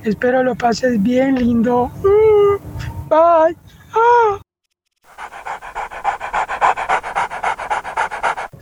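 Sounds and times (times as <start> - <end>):
speech: 0.0 - 4.4
dog panting rapidly: 5.1 - 8.5.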